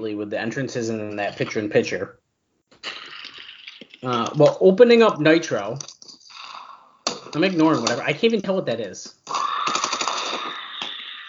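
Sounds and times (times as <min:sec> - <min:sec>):
speech: 0:00.0 - 0:02.2, 0:04.0 - 0:05.9, 0:07.3 - 0:09.2
gunshots outside: 0:09.6 - 0:10.8.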